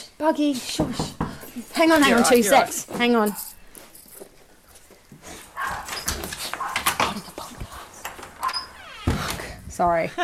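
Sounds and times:
speech: 0.2s - 3.5s, 9.8s - 10.2s
dog barking: 5.6s - 6.0s, 6.6s - 7.0s.

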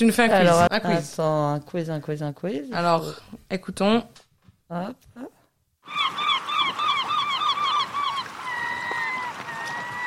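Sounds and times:
speech: 0.0s - 6.2s
gull calling with harsh cries: 5.8s - 10.0s.

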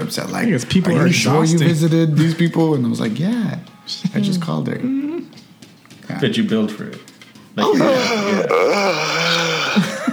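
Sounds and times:
speech: 0.1s - 5.0s, 6.1s - 9.9s
moaning yawn: 4.7s - 5.4s, 7.6s - 10.1s.

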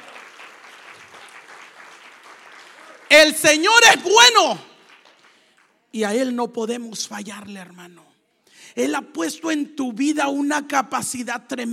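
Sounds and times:
crowd applauding in a large room: 0.0s - 5.7s
speech: 3.1s - 4.7s, 5.9s - 8.1s, 8.7s - 11.7s.

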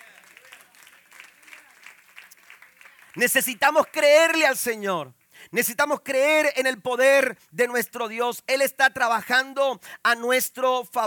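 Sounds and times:
audience applause: 0.0s - 3.4s
speech: 3.2s - 11.0s.

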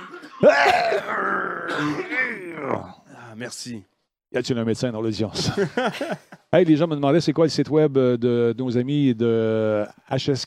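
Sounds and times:
loud raspy cough into a microphone as a test: 0.0s - 2.8s
speech: 0.4s - 10.4s
laughter: 5.4s - 6.5s.

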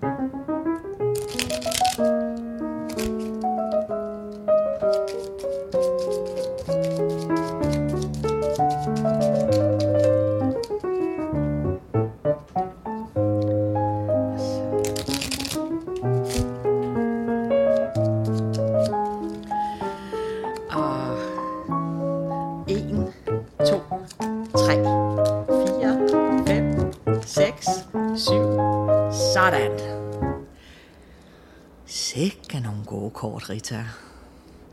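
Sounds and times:
continuous melodic music: 0.0s - 30.6s
playing cards shuffled for a game of 500: 1.1s - 11.6s, 14.3s - 21.0s, 22.7s - 30.5s
speech: 33.4s - 34.1s.

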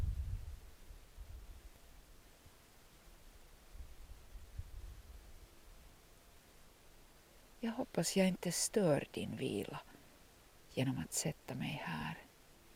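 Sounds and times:
outdoor wind blowing: 0.0s - 1.7s, 3.7s - 5.6s
speech: 7.6s - 10.0s, 10.8s - 12.3s.

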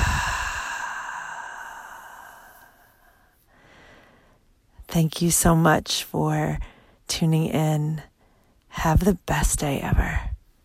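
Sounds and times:
long breathy exhale through the nose and mouth after a deep breath: 0.0s - 4.3s
speech: 5.0s - 8.1s, 8.8s - 10.3s.

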